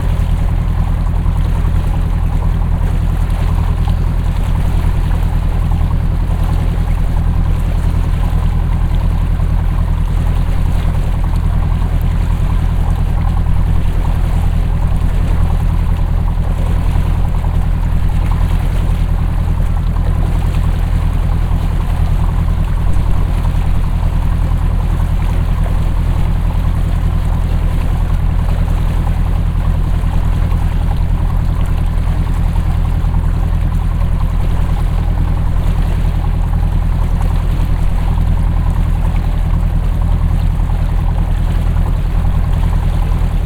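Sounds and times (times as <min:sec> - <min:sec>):
motor boat: 0:00.0 - 0:43.4.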